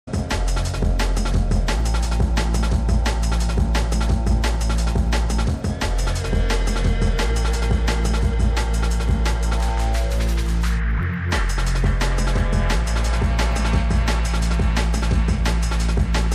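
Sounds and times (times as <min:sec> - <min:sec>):
drum and bass jungle and old skool music on radio: 0:00.0 - 0:16.3.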